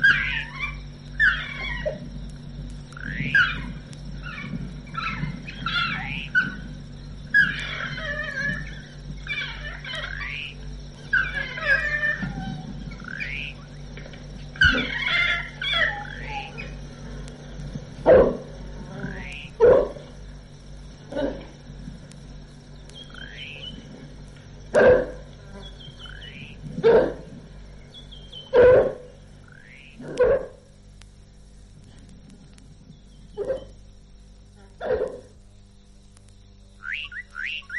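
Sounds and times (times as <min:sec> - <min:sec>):
pack of African hunting dogs yelping, barking and howling: 0:00.0 - 0:02.1, 0:03.1 - 0:06.7, 0:07.3 - 0:13.6, 0:14.5 - 0:16.9, 0:18.0 - 0:20.1, 0:24.7 - 0:27.3, 0:28.2 - 0:30.7, 0:33.3 - 0:33.8, 0:34.8 - 0:35.3.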